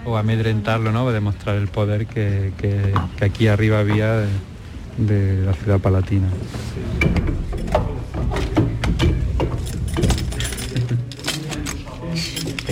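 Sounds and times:
speech: 0.0 - 7.1
low murmur of voices: 0.0 - 12.7
keys unlocking an old heavy door: 7.1 - 12.7.

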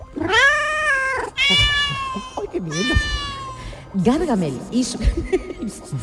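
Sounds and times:
cat meowing: 0.2 - 3.8
speech: 2.6 - 3.2, 3.9 - 6.0
laughter: 4.9 - 6.0.

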